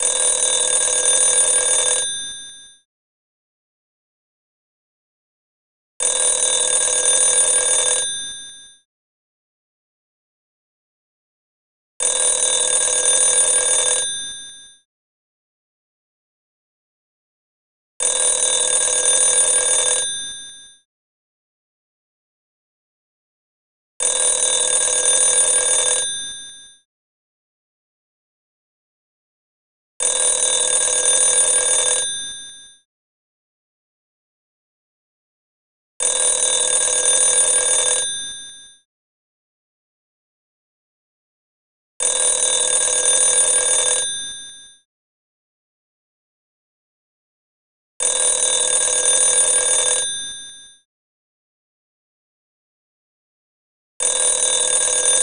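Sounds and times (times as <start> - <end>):
telephone ringing: 0.0 - 2.8, 6.0 - 8.8, 12.0 - 14.8, 18.0 - 20.8, 24.0 - 26.8, 30.0 - 32.8, 36.0 - 38.8, 42.0 - 44.8, 48.0 - 50.8, 54.0 - 55.2.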